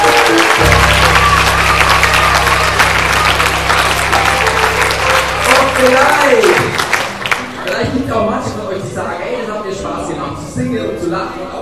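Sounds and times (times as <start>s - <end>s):
large audience applause: 0.0s - 7.8s
crowd noise: 0.0s - 11.6s
speech: 5.8s - 6.5s.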